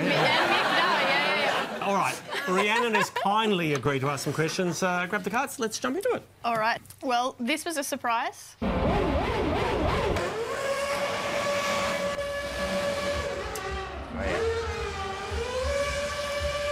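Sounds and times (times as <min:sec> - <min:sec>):
laughter: 0:00.0 - 0:05.4
speech: 0:02.5 - 0:09.2
racing car engine whine during burnouts: 0:08.6 - 0:16.7.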